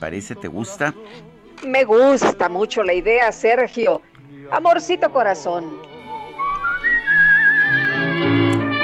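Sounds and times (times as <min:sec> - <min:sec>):
speech: 0:00.0 - 0:05.9
warm instrumental backing music: 0:00.3 - 0:08.8
person whistling a melody: 0:06.0 - 0:08.8.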